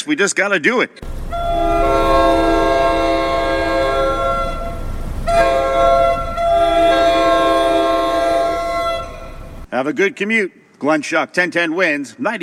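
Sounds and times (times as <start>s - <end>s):
speech: 0.0s - 2.5s, 9.8s - 12.4s
steady train rail rumble at commuter rail station: 1.0s - 9.7s
train horn blasts at commuter rail station: 1.1s - 9.7s.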